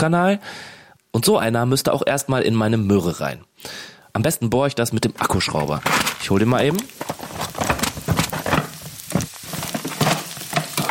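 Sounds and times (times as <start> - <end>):
speech: 0.0 - 7.6
onions sizzling while frying in a pan: 5.3 - 10.8.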